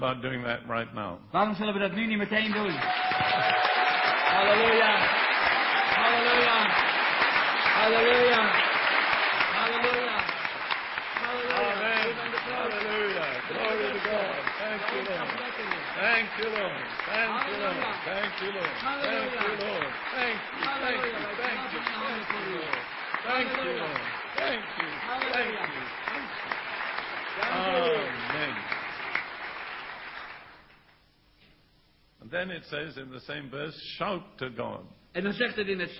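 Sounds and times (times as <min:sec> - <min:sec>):
speech: 0:00.0 - 0:05.3, 0:07.8 - 0:08.8, 0:14.1 - 0:26.7, 0:27.4 - 0:28.8, 0:32.3 - 0:35.9
crowd clapping hands in applause: 0:02.4 - 0:30.8
voices shouting and cheering: 0:02.8 - 0:06.9, 0:11.2 - 0:26.5, 0:27.3 - 0:28.6.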